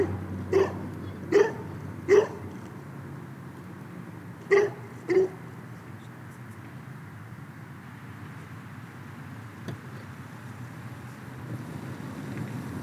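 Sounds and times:
dog barking in short sharp yelps: 0:00.0 - 0:02.5, 0:04.5 - 0:05.4
low rumble of traffic: 0:00.0 - 0:12.8
low rumble of wind: 0:00.0 - 0:12.8.

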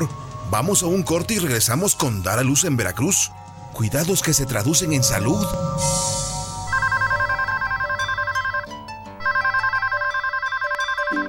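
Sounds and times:
speech: 0:00.0 - 0:06.2
bright warbling electronic telephone ringing on a call to a free helpline: 0:06.6 - 0:11.2.

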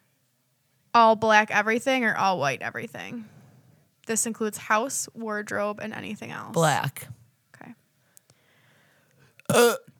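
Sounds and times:
speech: 0:01.0 - 0:03.4, 0:04.1 - 0:07.8, 0:09.5 - 0:09.9
loud hiccup-like burp: 0:09.5 - 0:09.9.

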